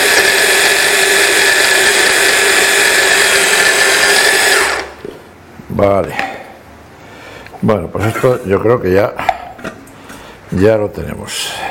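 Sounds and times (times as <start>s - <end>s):
blender grinding ingredients: 0.0s - 5.1s
speech: 5.8s - 6.2s, 7.6s - 9.3s, 10.5s - 11.4s.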